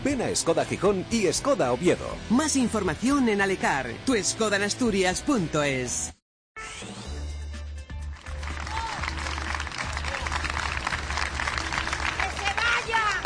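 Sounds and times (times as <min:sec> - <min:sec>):
speech: 0:00.0 - 0:06.2
large outdoor crowd of protesters clapping: 0:08.0 - 0:13.2
protesters shouting and cheering: 0:08.5 - 0:10.5.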